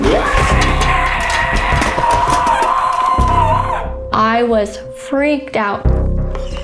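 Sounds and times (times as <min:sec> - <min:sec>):
voice imitating a woman's horror-movie scream: 0:00.0 - 0:04.0
speech: 0:04.4 - 0:06.0.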